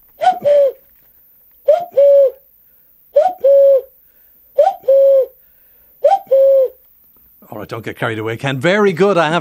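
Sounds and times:
man imitating a two-note cuckoo call: 0.2 - 0.8, 1.6 - 2.5, 3.2 - 3.9, 4.6 - 5.4, 6.0 - 6.8
speech: 7.6 - 9.3.

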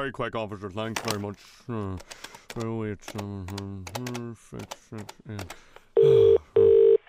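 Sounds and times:
speech: 0.0 - 6.2
electronic telephone tones of a number being dialed: 6.0 - 7.0.

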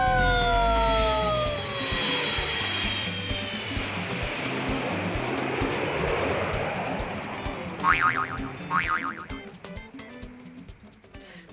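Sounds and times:
cartoon-style vehicle takeoff effect with engines starting: 0.0 - 9.5
springy boings: 7.8 - 9.5.

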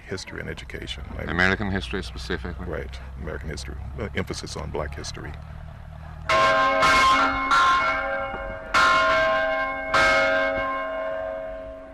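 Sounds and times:
speech: 0.1 - 5.6
church bell ringing: 6.3 - 11.9.

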